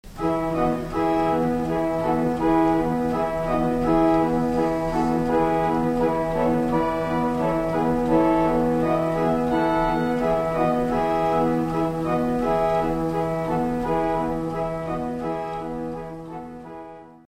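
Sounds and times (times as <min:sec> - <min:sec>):
organ swell with Viola de Gamba stop: 0:00.1 - 0:17.2.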